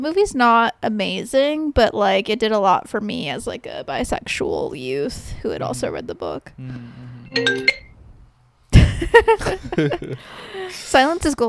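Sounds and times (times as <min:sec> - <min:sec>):
speech: 0:00.0 - 0:07.8, 0:09.0 - 0:11.4
Apple computer ringing with an incoming phone call: 0:07.3 - 0:07.9
laughter: 0:08.8 - 0:10.3.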